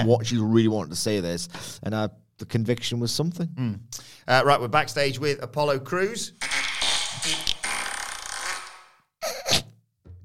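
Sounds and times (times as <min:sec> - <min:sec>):
speech: 0:00.0 - 0:06.4, 0:07.2 - 0:07.5
long raspy fart: 0:06.4 - 0:09.8.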